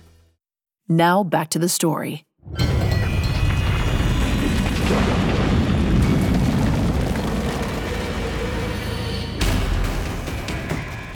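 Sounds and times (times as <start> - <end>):
speech: 0.9 - 2.7
deep rumbling roar of ground splitting open: 2.6 - 10.4
crackling debris: 3.0 - 11.1
walls cracking: 4.4 - 8.6.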